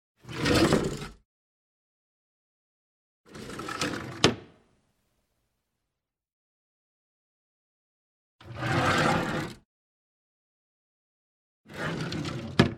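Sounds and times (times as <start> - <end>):
wooden writing desk drawers opening and closing: 0.2 - 1.2, 3.3 - 4.6, 8.4 - 9.6, 11.7 - 12.7.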